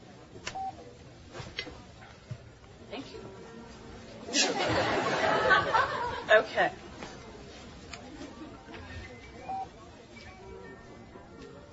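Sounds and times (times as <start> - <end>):
phone keypad dialing beeps: 0.5 - 0.8, 9.3 - 10.7
laughter: 4.3 - 6.6
speech: 6.6 - 6.8.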